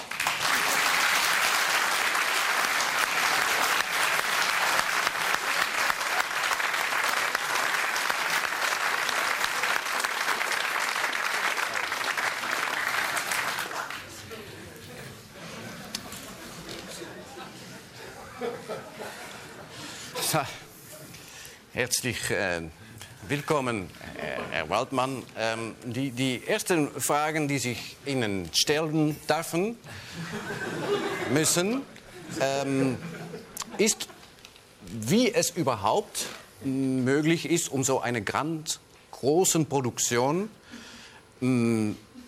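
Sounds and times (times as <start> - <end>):
audience giving warm applause: 0.0 - 14.4
laughter: 15.3 - 20.3, 30.0 - 34.3
speech: 21.8 - 30.7, 31.3 - 33.1, 33.8 - 34.1, 35.0 - 40.6, 41.4 - 42.1.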